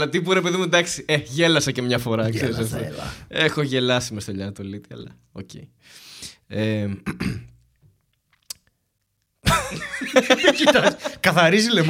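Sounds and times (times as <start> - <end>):
speech: 0.0 - 7.5, 10.2 - 11.8
coughing: 6.9 - 7.6
throat clearing: 7.0 - 7.6
laughter: 9.5 - 11.8.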